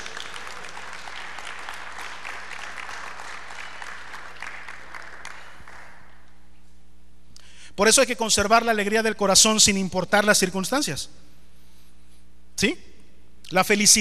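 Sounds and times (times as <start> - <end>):
congregation clapping and cheering: 0.0 - 6.4
low room hum: 0.0 - 14.0
speech: 7.8 - 11.2, 12.6 - 12.9, 13.5 - 14.0.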